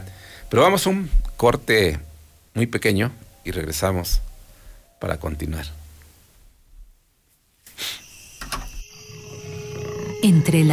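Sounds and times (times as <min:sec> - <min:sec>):
speech: 0:00.5 - 0:04.3, 0:05.0 - 0:05.8, 0:10.2 - 0:10.7
steady droning hum: 0:08.1 - 0:10.7
jaguar roaring: 0:09.1 - 0:10.3.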